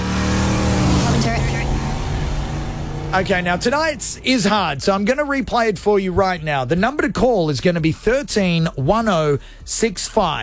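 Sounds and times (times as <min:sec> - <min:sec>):
car passing by: 0:00.0 - 0:04.9
speech: 0:03.1 - 0:10.4.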